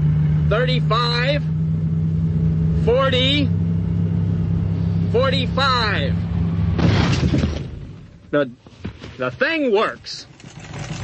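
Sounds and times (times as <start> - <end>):
car engine accelerating toward a barrier during a crash test: 0.0 - 7.7
speech: 0.5 - 1.5, 2.8 - 3.6, 5.1 - 6.2, 8.3 - 10.3.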